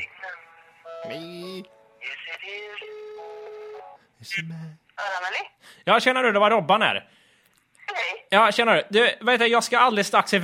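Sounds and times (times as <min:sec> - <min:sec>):
telephone ringing tones: 0:00.6 - 0:04.0
speech: 0:01.0 - 0:02.9, 0:04.2 - 0:07.2, 0:08.3 - 0:10.4.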